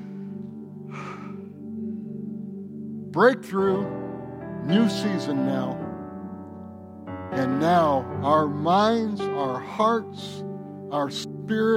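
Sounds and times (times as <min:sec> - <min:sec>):
people taking a deep breath together during a church prayer: 0:00.0 - 0:02.3
speech: 0:03.1 - 0:04.0, 0:04.6 - 0:05.8, 0:07.4 - 0:11.7.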